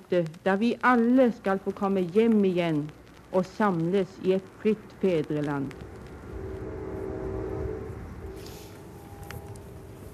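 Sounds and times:
speech: 0.1 - 5.9
distant train from New York rumbling: 4.4 - 10.1
American-style train horn sounding a long chord: 6.4 - 10.1.

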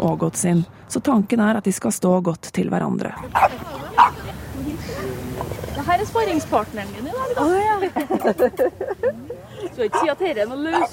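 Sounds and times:
speech: 0.0 - 5.1, 5.8 - 10.9
low murmur: 3.1 - 10.9
large ridgeback dog barking: 3.2 - 4.2, 9.9 - 10.9
laughter: 7.1 - 10.2.

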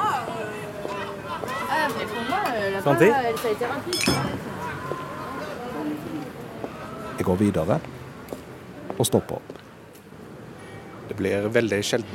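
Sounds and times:
bar patrons chatting and laughing: 0.0 - 7.8
murmur of babble: 0.0 - 12.1
speech: 1.9 - 5.0, 7.2 - 8.0, 9.0 - 9.6, 11.2 - 12.1
glasses clinking in a bar: 3.9 - 4.5.

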